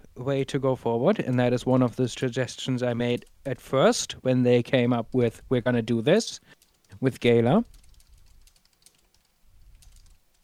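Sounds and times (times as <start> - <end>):
speech: 0.2 - 7.8
typing on a computer keyboard: 6.5 - 7.0, 7.6 - 10.4.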